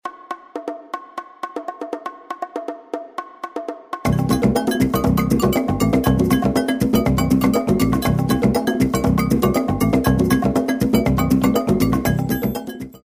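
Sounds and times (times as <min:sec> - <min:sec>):
world music groove: 0:00.0 - 0:13.0.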